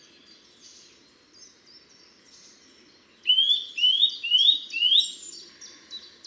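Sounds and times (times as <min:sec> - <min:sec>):
Eurasian nuthatch Sitta europaea upslurred whistled calls: 0:03.3 - 0:05.2.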